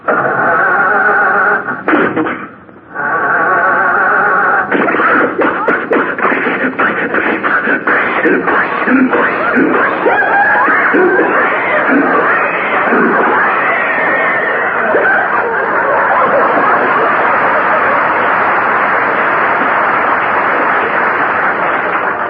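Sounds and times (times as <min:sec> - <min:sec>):
voice imitating an old car engine sputtering and failing to start: 0:00.0 - 0:17.0
laughter: 0:03.3 - 0:22.0.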